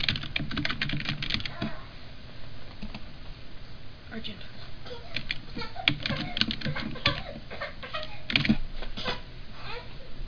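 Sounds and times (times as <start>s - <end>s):
fast typing on a computer keyboard entering a search term: 0.0s - 1.7s, 2.8s - 3.0s, 5.1s - 7.4s, 8.0s - 8.6s
speech: 4.2s - 5.0s.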